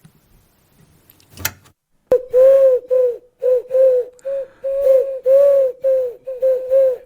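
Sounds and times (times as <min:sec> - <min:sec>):
pigeon cooing: 0:02.1 - 0:07.0.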